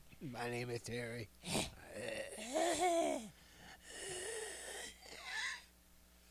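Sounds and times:
speech: 0:00.2 - 0:03.4
strained wheezing breaths with whistling: 0:02.4 - 0:05.7.

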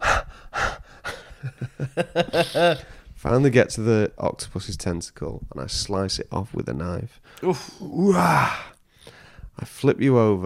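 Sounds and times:
person imitating heavy panting while running: 0:00.0 - 0:01.6, 0:02.2 - 0:03.1
laughter: 0:01.4 - 0:02.8
speech: 0:01.5 - 0:08.7, 0:09.6 - 0:10.4.

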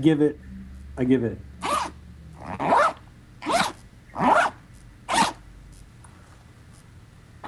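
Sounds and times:
speech: 0:00.0 - 0:01.5
zipper being zipped: 0:01.6 - 0:05.4.

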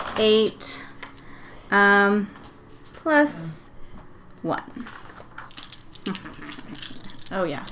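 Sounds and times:
speech: 0:00.2 - 0:00.8, 0:01.7 - 0:02.4, 0:03.0 - 0:03.7, 0:04.4 - 0:05.1, 0:06.1 - 0:07.7
dice clattering across a hard tabletop: 0:05.4 - 0:07.7.

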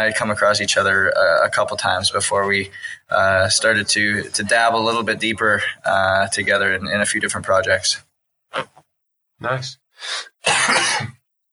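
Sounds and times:
speech: 0:00.0 - 0:08.8, 0:09.4 - 0:11.2
quick breathy intake: 0:10.0 - 0:10.4
harsh raspy cough from a person with a cold: 0:10.0 - 0:11.2.

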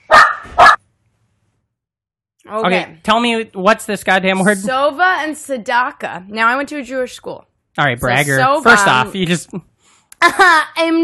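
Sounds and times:
dog barking: 0:00.0 - 0:00.8
speech: 0:02.5 - 0:11.0.

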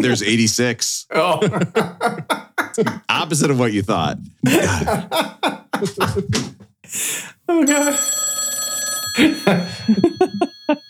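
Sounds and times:
laughter: 0:00.0 - 0:00.4, 0:01.1 - 0:03.4, 0:04.4 - 0:06.6, 0:09.2 - 0:10.8
speech: 0:00.0 - 0:08.3, 0:09.2 - 0:10.8
telephone ringing with an incoming call: 0:07.6 - 0:10.8.

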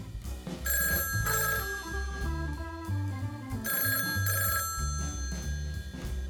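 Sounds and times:
steady music with a bouncing bass line: 0:00.0 - 0:06.2
telephone ringing with a bright trilling burst: 0:00.7 - 0:02.4, 0:03.6 - 0:06.2.

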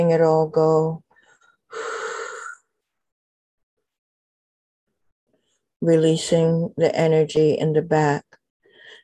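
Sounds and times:
speech: 0:00.0 - 0:01.0, 0:05.8 - 0:08.3
deep breath during a relaxation exercise: 0:01.1 - 0:02.7, 0:08.6 - 0:09.0.

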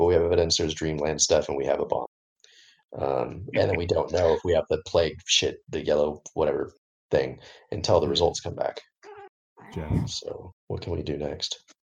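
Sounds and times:
speech: 0:00.1 - 0:02.1, 0:02.9 - 0:08.9, 0:09.6 - 0:11.8
cat meowing: 0:09.1 - 0:10.1.

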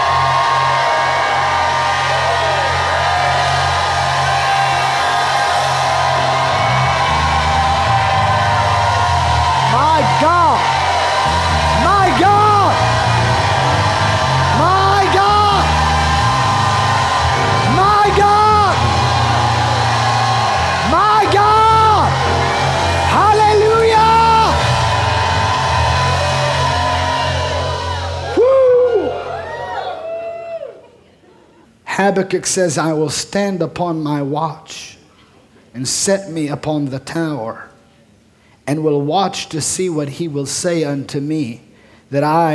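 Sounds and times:
large crowd shouting and whooping: 0:00.0 - 0:31.2
speech: 0:32.2 - 0:35.0, 0:35.7 - 0:37.7, 0:38.7 - 0:42.5.

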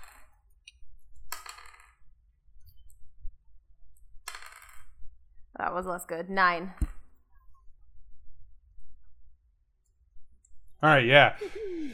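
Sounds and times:
dice rolling on a hard table: 0:00.0 - 0:00.4, 0:01.1 - 0:02.1, 0:04.2 - 0:05.0
speech: 0:05.7 - 0:06.9, 0:10.8 - 0:11.9.

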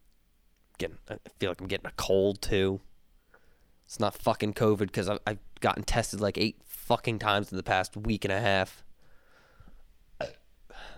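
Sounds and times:
speech: 0:00.8 - 0:02.9, 0:03.9 - 0:08.9, 0:10.2 - 0:10.4
person burping: 0:10.2 - 0:10.9.

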